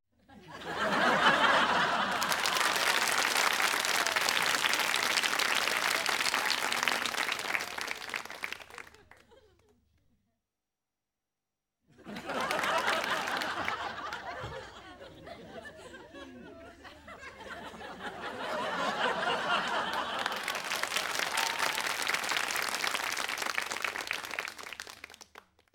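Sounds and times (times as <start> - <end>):
laughter indoors: 0.1 - 2.8, 8.6 - 9.9, 11.9 - 20.8
applause indoors: 0.6 - 10.0, 12.0 - 14.6, 18.2 - 25.7.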